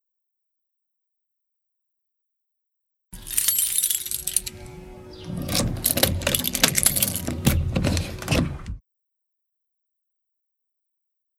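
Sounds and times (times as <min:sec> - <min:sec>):
key jiggling and scraping in a door lock: 0:03.2 - 0:04.7, 0:05.3 - 0:08.7
metallic jangling of keys: 0:03.2 - 0:04.7, 0:05.4 - 0:08.1
lock clicks and clunks while unlocking a door: 0:04.0 - 0:08.8.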